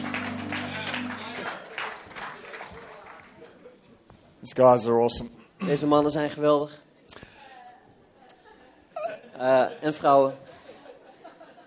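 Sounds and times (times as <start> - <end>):
crowd at a church clapping for the band: 0.0 - 3.8
speech: 4.4 - 6.8, 9.4 - 10.4
laughter: 9.4 - 11.6.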